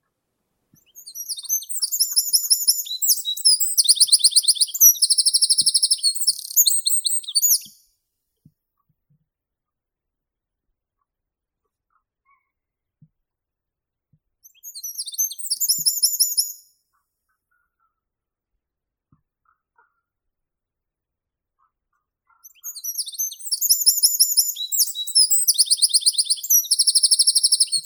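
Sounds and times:
wren Troglodytes troglodytes calling: 1.0s - 7.8s, 14.6s - 16.6s, 22.5s - 27.8s.

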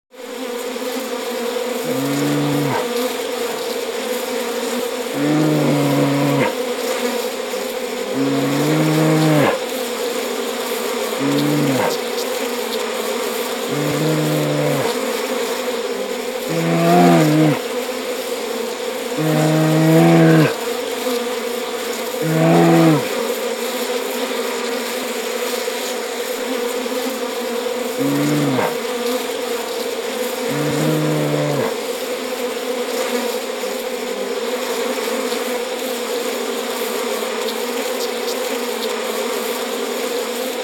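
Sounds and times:
bees: 0.2s - 40.6s
bear taking honey from bees: 1.8s - 3.1s, 5.0s - 6.7s, 7.7s - 9.7s, 11.1s - 12.1s, 13.6s - 15.1s, 16.1s - 17.7s, 19.1s - 20.7s, 22.1s - 23.2s, 27.9s - 31.9s.

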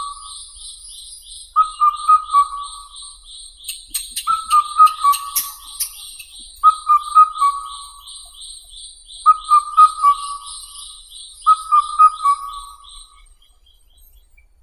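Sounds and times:
Indian cuckoo Cuculus micropterus calling: 1.6s - 13.1s.

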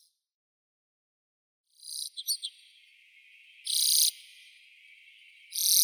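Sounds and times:
common redpoll Acanthis flammea: 1.8s - 5.8s.

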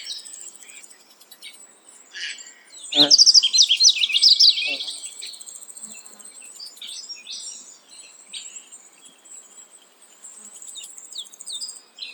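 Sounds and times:
yellow-throated bunting Emberiza elegans calling: 2.1s - 5.3s.

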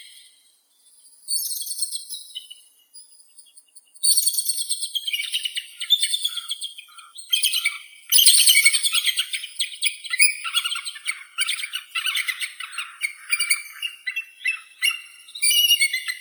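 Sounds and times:
bald eagle Haliaeetus leucocephalus calling: 5.2s - 16.1s.

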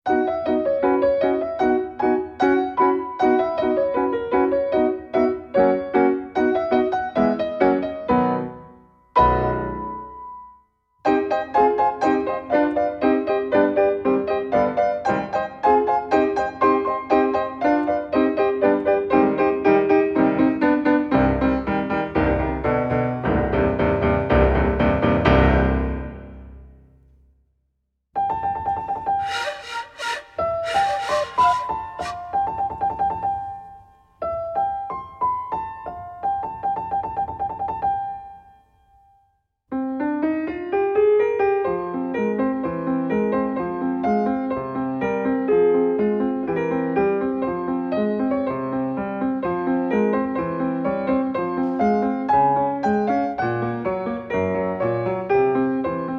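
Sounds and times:
piano: 0.0s - 27.2s, 28.2s - 56.1s
flute: 29.2s - 33.0s.

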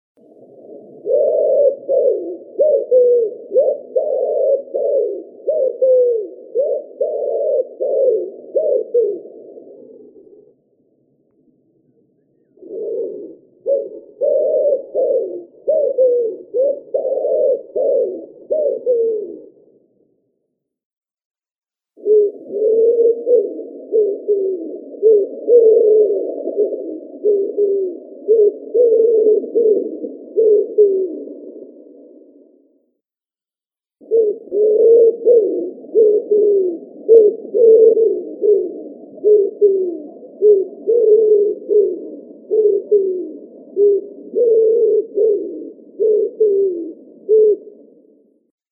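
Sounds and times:
Columba palumbus wood pigeon: 0.2s - 10.6s, 11.8s - 19.8s, 22.0s - 32.7s, 34.0s - 48.6s.

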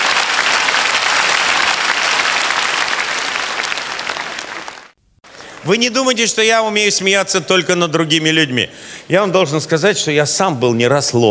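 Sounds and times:
crowd applause: 0.0s - 5.7s
speech: 5.7s - 11.2s.

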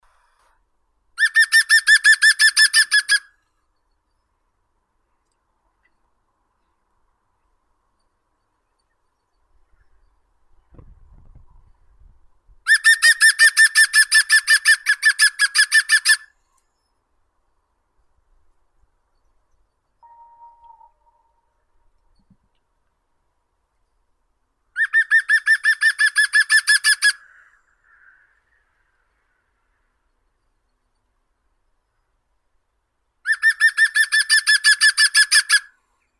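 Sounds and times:
green woodpecker Picus viridis: 1.2s - 3.3s, 12.7s - 16.2s, 24.8s - 29.9s, 33.3s - 35.7s.

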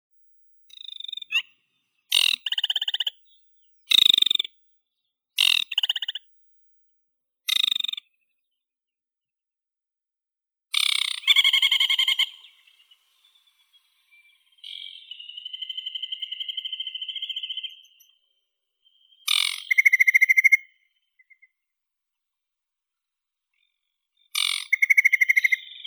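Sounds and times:
aquatic warbler Acrocephalus paludicola: 0.7s - 4.5s, 5.4s - 6.2s, 10.7s - 21.5s, 23.6s - 25.8s.

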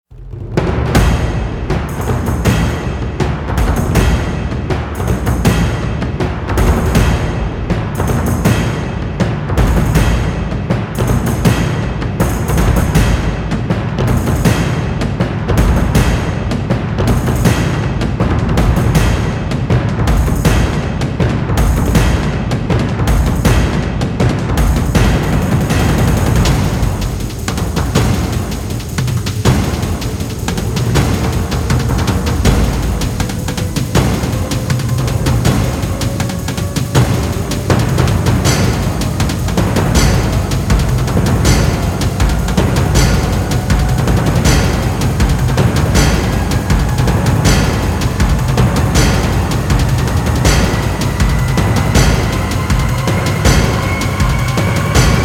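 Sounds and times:
drums: 0.0s - 55.2s
sound effects: 25.0s - 55.2s.

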